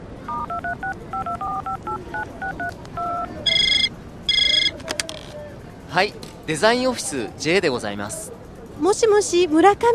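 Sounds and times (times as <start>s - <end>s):
bright buzzy phone ring: 0.3s - 4.8s
two-tone telephone keypad beeps: 0.3s - 4.8s
speech: 5.9s - 9.9s.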